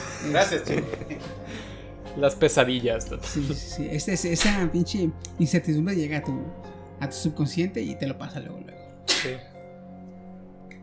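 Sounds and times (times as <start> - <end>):
speech: 0.2 - 1.4, 2.2 - 9.5
person sneezing: 9.1 - 9.4.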